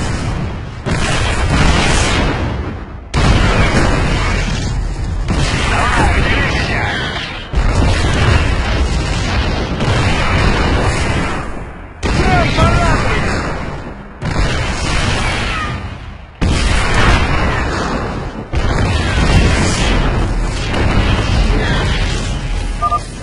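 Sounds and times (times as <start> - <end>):
explosions with roaring rumble: 0.0 - 23.2
siege tank artillery cannon fire: 0.0 - 23.2.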